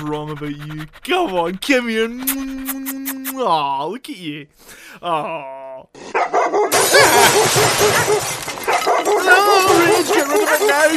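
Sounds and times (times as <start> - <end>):
speech: 0.0 - 10.9
dog yipping and barking: 6.2 - 6.8, 7.8 - 9.7.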